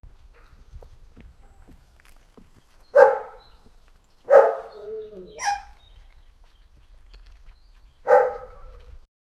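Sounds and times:
footsteps outdoors: 0.1s - 9.0s
dog barking outdoors: 2.9s - 3.4s, 4.3s - 5.8s, 8.0s - 8.8s.

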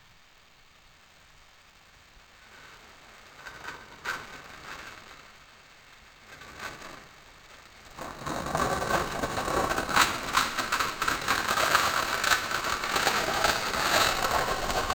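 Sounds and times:
boulder dragging: 7.9s - 14.9s.

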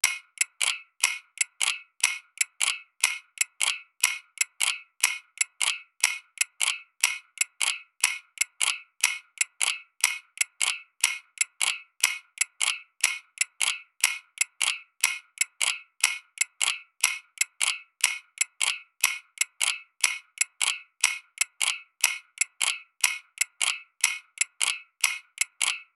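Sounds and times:
rhythmic ticking of an old timekeeping device: 0.0s - 25.9s.

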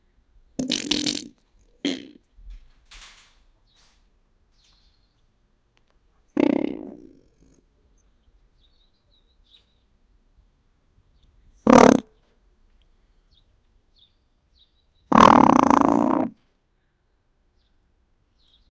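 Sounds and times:
turkey burping: 0.6s - 2.2s, 6.4s - 7.6s, 11.7s - 12.1s, 15.1s - 16.4s.

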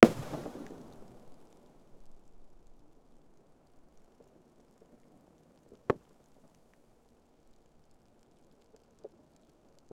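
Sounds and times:
muffled rockfall: 0.0s - 1.5s.

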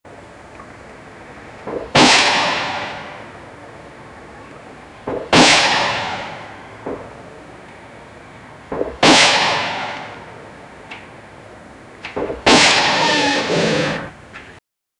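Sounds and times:
AK47 rifle shots: 2.0s - 3.2s, 5.3s - 6.4s, 9.0s - 10.2s, 12.5s - 13.4s.

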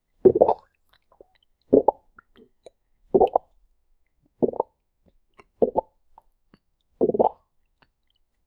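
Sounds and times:
natural human swallowing: 0.3s - 0.7s, 4.4s - 4.7s, 7.0s - 7.4s.

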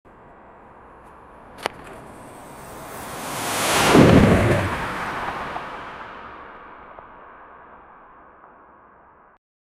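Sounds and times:
space station crashing: 2.3s - 5.2s.

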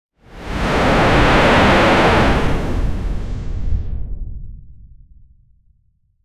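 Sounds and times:
dramatic whoosh: 0.3s - 4.0s.

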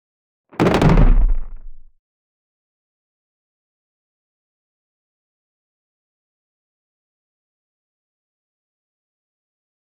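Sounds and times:
blunt object falling with a sharp dry thud: 0.6s - 2.0s.

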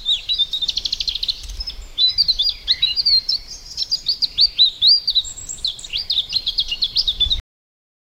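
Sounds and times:
bird singing a twittering warble: 0.0s - 7.4s.

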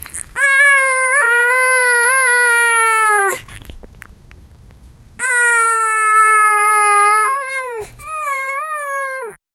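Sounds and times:
sad puppy crying: 0.3s - 3.5s, 5.2s - 9.4s.

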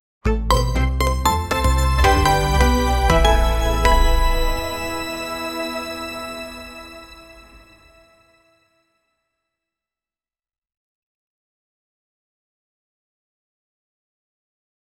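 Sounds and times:
short logo sound: 0.5s - 8.0s.

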